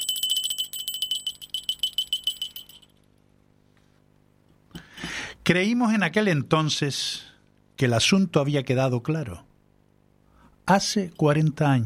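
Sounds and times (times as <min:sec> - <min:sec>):
small bell ringing: 0:00.0 - 0:03.2
speech: 0:05.5 - 0:09.5, 0:10.7 - 0:11.8.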